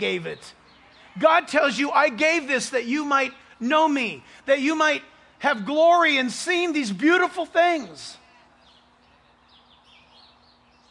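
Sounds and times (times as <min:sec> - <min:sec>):
speech: 0:00.0 - 0:00.6, 0:01.2 - 0:08.2
birds chirping and twittering outdoors at sunrise: 0:00.0 - 0:10.8
soft outdoor noise: 0:00.0 - 0:10.8.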